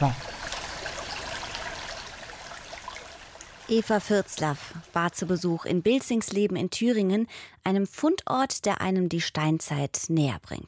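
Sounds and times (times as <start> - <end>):
speech: 0.0 - 0.3, 3.7 - 10.6
river babbling through meadows and forest in Thuringia Germany: 0.0 - 5.6.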